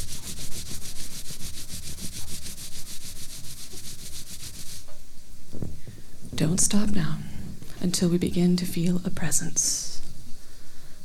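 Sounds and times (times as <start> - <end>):
palms rubbing together: 0.0 - 5.0
speech: 6.4 - 9.8.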